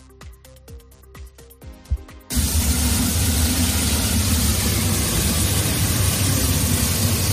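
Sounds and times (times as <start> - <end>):
roaring flame from ignited gas leak blasting from a broken pipe: 2.3 - 7.3.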